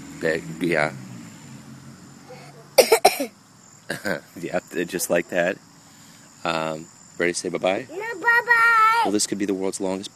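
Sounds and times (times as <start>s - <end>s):
speech: 0.2s - 1.0s, 3.2s - 5.7s, 6.4s - 10.1s
child coughing: 2.8s - 3.3s.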